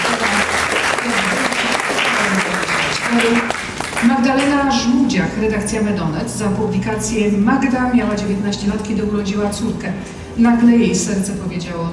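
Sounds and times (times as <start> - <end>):
audience applause at a journalism awards ceremony: 0.0 - 4.5
speech: 3.2 - 3.4, 4.7 - 11.9.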